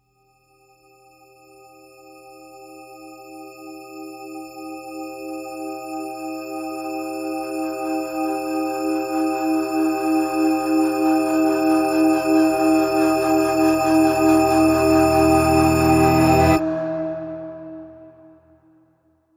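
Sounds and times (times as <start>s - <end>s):
tonal riser: 5.8s - 16.7s.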